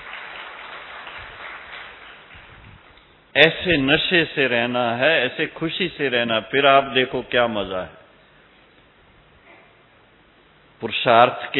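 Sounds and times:
audience applause: 0.0 - 2.5
speech: 3.4 - 8.0, 10.8 - 11.5.

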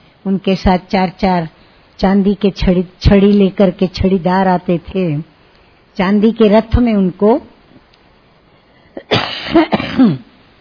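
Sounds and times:
speech: 0.2 - 5.3, 6.0 - 7.5, 9.0 - 10.3
woman with a heavy cough coughing: 9.0 - 10.4.

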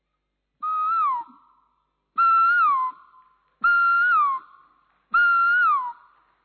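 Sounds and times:
person whistling an imitation of a koel's call: 0.6 - 1.5, 2.2 - 4.5, 5.1 - 6.0.

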